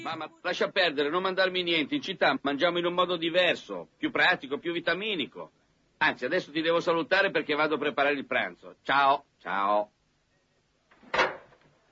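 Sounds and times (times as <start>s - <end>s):
speech: 0.0s - 10.0s
folding table clunking as it locks into place: 11.0s - 11.6s.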